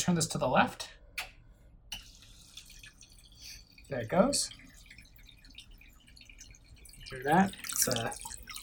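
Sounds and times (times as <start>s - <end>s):
speech: 0.0s - 1.0s, 3.9s - 4.6s, 7.1s - 8.4s
water running into a toilet tank refilling: 2.0s - 8.6s
water splashes and drips: 2.0s - 8.6s.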